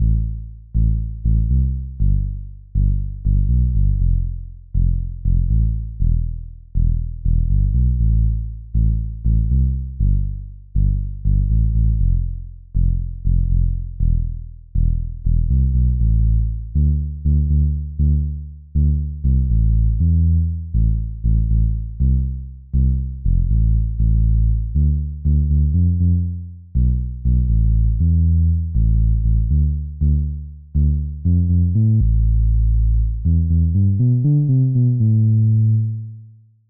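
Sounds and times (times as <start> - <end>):
bass in G: 0.0 - 36.6.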